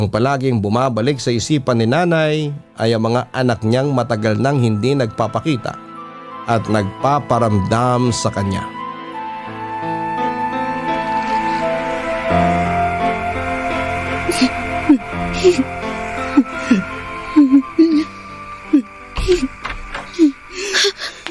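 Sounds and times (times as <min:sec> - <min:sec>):
speech: 0:00.0 - 0:08.8, 0:15.4 - 0:15.8
soft sustained musical backdrop: 0:00.0 - 0:21.2
elderly woman crying in short shaky sobs and whimpers: 0:14.1 - 0:21.2.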